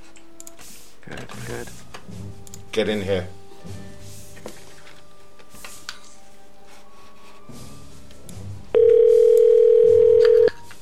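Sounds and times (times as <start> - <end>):
speech: 1.1 - 4.0
telephone ringback tone on an outgoing call: 8.8 - 10.5.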